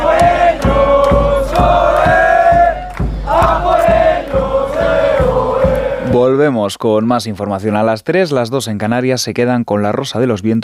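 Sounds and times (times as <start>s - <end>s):
crowd of football fans chanting in the streets before a final: 0.0s - 6.4s
regular sharp percussive beats: 0.0s - 6.4s
speech: 6.4s - 10.6s.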